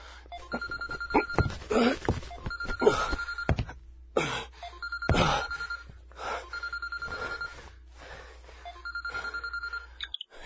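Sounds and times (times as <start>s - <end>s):
mobile phone ringing with electronic trills: 0.3s - 1.6s, 2.3s - 3.7s, 4.6s - 7.8s, 8.6s - 10.1s
person gasping and moaning: 0.4s - 2.2s, 4.2s - 5.6s
speech: 0.5s - 0.8s, 1.8s - 2.1s.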